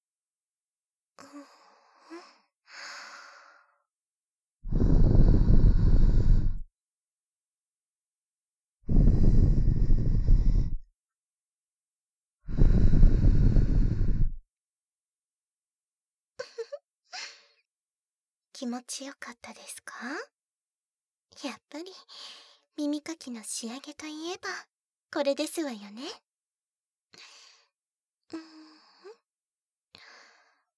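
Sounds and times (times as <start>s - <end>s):
soft breaths blown into the ear after ear cleaning: 4.7s - 6.6s, 8.9s - 10.8s, 12.5s - 14.4s
speech: 18.6s - 20.4s, 21.4s - 26.2s, 27.1s - 27.4s, 28.3s - 28.6s.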